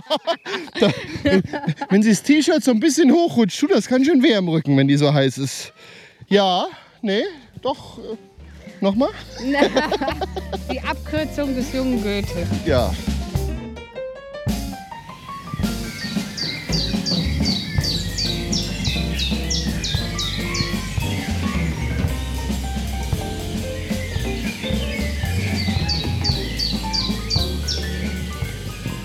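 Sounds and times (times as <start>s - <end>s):
chorus of many birds chirping and singing outdoors in a city: 0.0s - 1.4s, 8.4s - 12.2s, 15.1s - 29.0s
laughter: 0.0s - 3.3s, 9.0s - 11.1s
speech: 0.1s - 13.1s.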